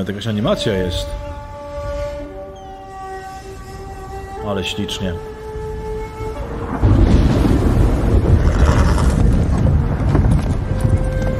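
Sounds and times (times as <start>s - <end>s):
speech: 0.0s - 1.3s, 4.4s - 5.3s
video game storm wind: 0.0s - 11.3s
video game storm thunder-like rumble: 5.8s - 11.3s
video game horse hoofbeats clopping: 8.3s - 11.3s.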